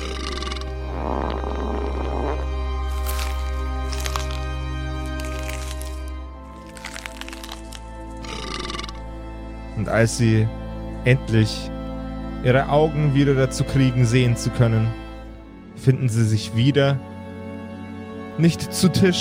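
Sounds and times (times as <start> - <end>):
farting: 0.0 - 3.3, 8.2 - 9.0
belching: 0.0 - 9.2
chewing and smacking with crunchy bursts: 2.9 - 9.0
speech: 9.9 - 11.7, 12.4 - 15.0, 15.8 - 17.1, 18.4 - 19.2.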